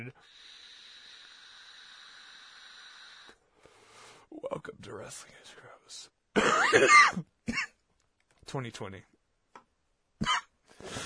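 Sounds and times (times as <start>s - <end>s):
speech: 0.1s - 0.5s, 4.3s - 7.6s, 8.5s - 9.1s
throaty cough: 6.4s - 7.8s, 10.2s - 10.5s.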